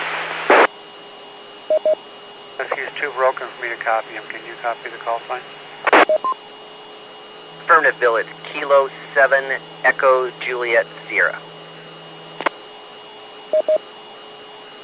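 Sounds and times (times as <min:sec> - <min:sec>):
steady hum: 0:00.0 - 0:14.8
short beeps: 0:01.7 - 0:02.0, 0:06.0 - 0:06.4, 0:13.5 - 0:13.8
speech: 0:01.8 - 0:06.5, 0:07.7 - 0:11.5, 0:13.6 - 0:13.9
narrowband radio voice in choppy bursts: 0:02.6 - 0:05.4, 0:07.7 - 0:11.4.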